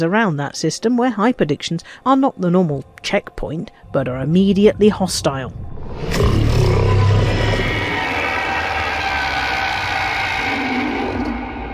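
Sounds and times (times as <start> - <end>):
speech: 0.0 - 6.9
deep sustained Thargoid alien roar: 5.8 - 11.7.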